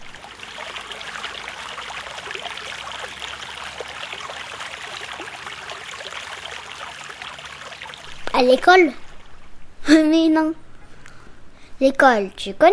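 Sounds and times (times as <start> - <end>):
river water rushing: 0.0 - 8.4
speech: 8.4 - 9.0, 9.9 - 10.6, 11.8 - 12.7.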